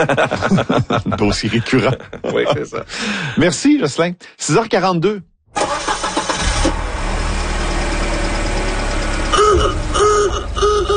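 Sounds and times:
laughter: 0.0 - 3.2
speech: 0.0 - 5.8
car engine starting and idling: 5.5 - 10.9.

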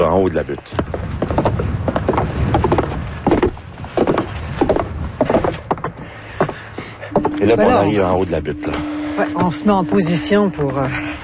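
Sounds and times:
wind or outdoor rumble: 0.0 - 11.2
speech: 0.1 - 1.1, 7.4 - 11.2
footsteps climbing a long wooden staircase up a hill: 0.6 - 7.8, 9.4 - 10.8.

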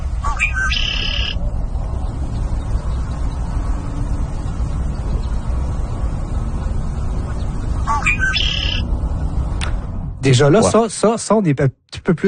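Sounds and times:
red-winged blackbird singing a buzzy trill: 0.0 - 1.5, 2.4 - 8.9
low rumbling background of wind or water: 0.0 - 11.2
speech: 10.3 - 12.2.

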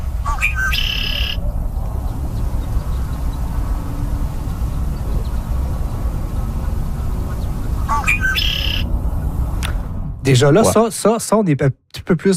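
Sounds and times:
steady low rumble of wind or traffic: 0.0 - 11.2
red-winged blackbird singing: 0.2 - 3.6, 4.4 - 8.9
speech: 10.3 - 12.3.

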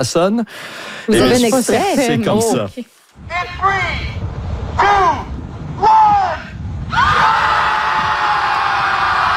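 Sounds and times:
speech: 0.0 - 6.0
crowd of 300 people screaming together outdoors: 6.9 - 9.3.

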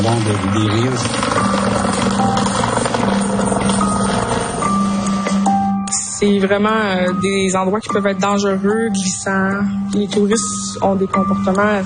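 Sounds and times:
speech: 0.0 - 3.1, 6.2 - 11.8
police helicopter flying overhead: 0.0 - 5.8
helicopter rotor thrum and engine whine: 0.0 - 5.9.

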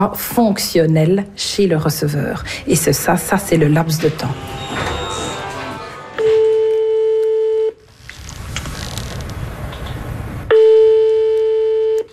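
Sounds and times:
speech: 0.0 - 5.0
noise: 0.0 - 12.1
telephone ringback tones as a hospital transplant coordinator places a call: 6.2 - 7.8, 10.5 - 12.1.

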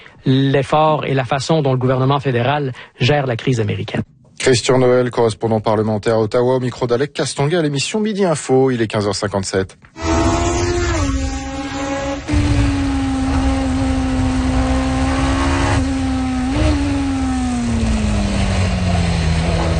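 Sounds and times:
speech: 0.2 - 10.2
racing car engine lapping a race track: 10.0 - 19.7.

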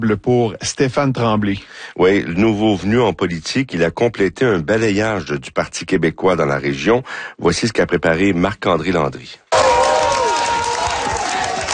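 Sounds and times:
speech: 0.0 - 9.4
supporters cheering and applauding at an election victory gathering: 9.5 - 11.7.

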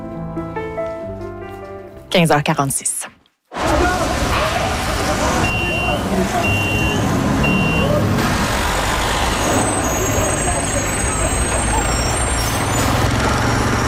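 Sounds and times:
speech: 2.1 - 3.2
busy city street traffic: 3.5 - 13.8
truck engine rumbling: 3.5 - 13.8
short high reversing beeps: 5.4 - 8.0
truck air brakes hissing: 9.4 - 12.9.

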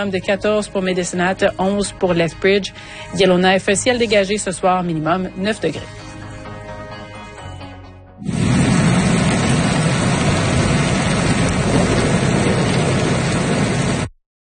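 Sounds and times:
speech: 0.0 - 6.0
heavy rain falling: 8.2 - 14.1.

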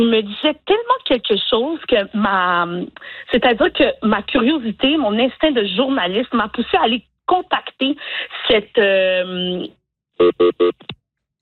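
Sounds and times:
speech: 0.0 - 11.0
short electronic phone ringtone: 10.2 - 10.8.

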